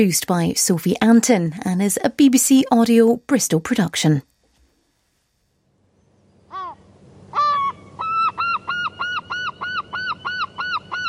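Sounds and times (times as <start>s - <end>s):
speech: 0.0s - 4.3s
herring gull calling: 6.5s - 11.0s.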